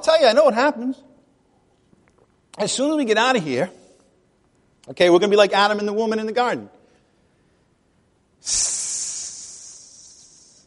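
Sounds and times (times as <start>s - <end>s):
speech: 0.0s - 1.1s, 2.6s - 3.8s, 4.8s - 6.8s, 8.4s - 8.8s
voice imitating a snake hiss: 8.4s - 10.6s.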